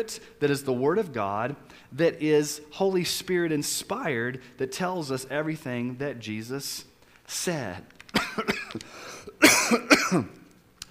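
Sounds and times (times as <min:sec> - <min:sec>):
speech: 0:00.0 - 0:10.4
person coughing: 0:08.2 - 0:10.4.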